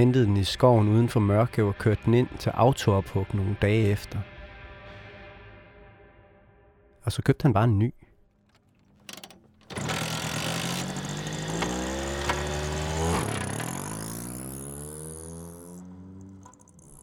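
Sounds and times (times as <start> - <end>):
speech: 0.0 - 4.3, 7.0 - 8.0
small two-stroke moped engine starting and revving: 8.5 - 17.0.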